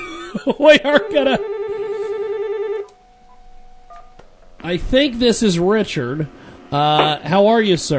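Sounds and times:
laughter: 0.0s - 1.4s
speech: 0.3s - 1.6s, 4.6s - 7.9s
loud warbling telephone ring: 0.7s - 4.2s.

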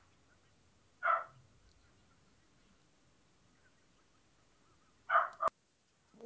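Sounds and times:
dog barking: 1.0s - 1.4s, 5.1s - 5.5s.

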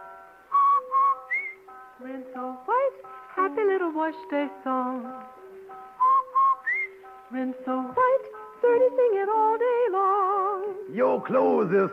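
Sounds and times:
person whistling a short tune: 0.5s - 1.7s, 6.0s - 7.0s
speech: 2.0s - 5.4s, 7.3s - 11.9s.

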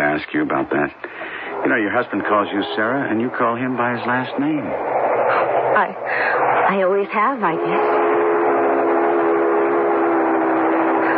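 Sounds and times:
coal train rumbling past: 0.0s - 11.1s
speech: 0.2s - 8.1s
coal train whistle blaring: 1.3s - 4.9s, 7.2s - 11.1s.

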